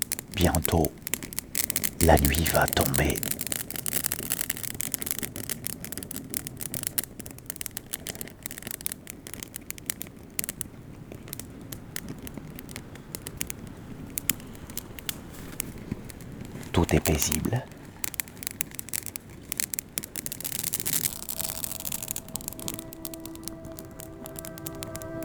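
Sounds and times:
wood fire crackling and popping with sharp snaps and soft hiss: 0:00.0 - 0:25.2
speech: 0:00.4 - 0:01.0, 0:02.0 - 0:03.4, 0:16.9 - 0:17.8.

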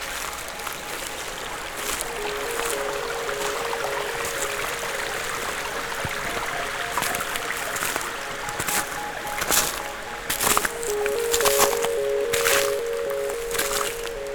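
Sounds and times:
faint tonal hum: 0:00.0 - 0:14.3
small trickling streams of meltwater among snow and dead leaves: 0:00.0 - 0:14.3
water splashes: 0:00.0 - 0:14.3.

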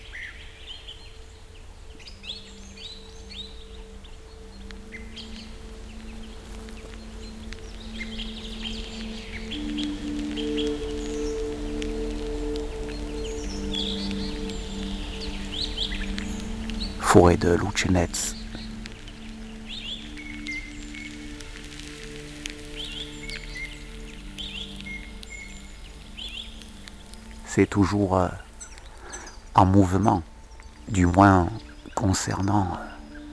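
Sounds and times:
birds chirping and singing at dusk in a forest: 0:02.1 - 0:33.3
speech: 0:17.2 - 0:18.4, 0:27.6 - 0:28.4, 0:29.6 - 0:30.3, 0:30.9 - 0:32.9.

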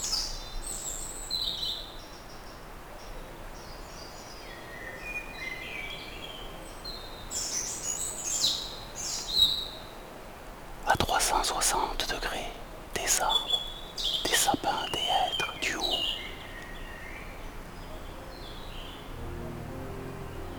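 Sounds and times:
soft ambient hiss: 0:00.0 - 0:20.5
birds chirping and calling in a dense mixed forest: 0:10.8 - 0:19.2.

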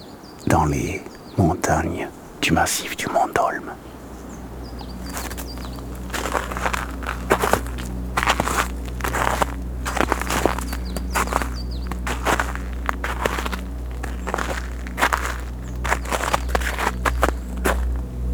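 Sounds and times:
speech: 0:00.4 - 0:03.9
low continuous rumble: 0:03.3 - 0:18.3
crunching footsteps on an ice-crusted snow-cleared trail in a mountain forest: 0:04.3 - 0:18.1.

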